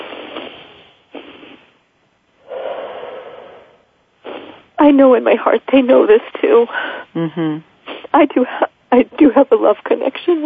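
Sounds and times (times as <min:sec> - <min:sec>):
person drawing deep breaths: 0:02.4 - 0:04.7, 0:06.7 - 0:07.2
speech: 0:04.8 - 0:10.4.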